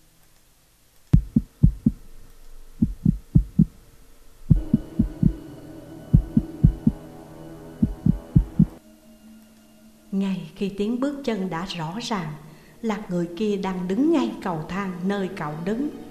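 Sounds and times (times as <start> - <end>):
heartbeat sound effect slowing down: 1.2 - 2.0, 2.8 - 3.8, 4.5 - 5.4, 6.1 - 7.0, 7.8 - 8.8
low droning hum: 1.2 - 8.8
speech: 10.2 - 16.0.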